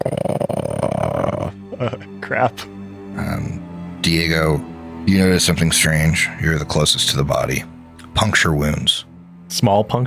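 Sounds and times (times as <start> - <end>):
person growling in imitation at a line of dolls: 0.0 - 2.1
speech: 2.3 - 10.0.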